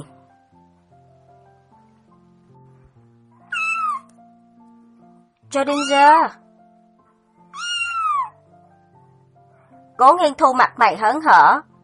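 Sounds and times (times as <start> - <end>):
house cat meowing at an entryway: 3.4 - 4.1, 5.6 - 6.3, 7.4 - 8.4
speech: 5.5 - 6.4, 10.0 - 11.7.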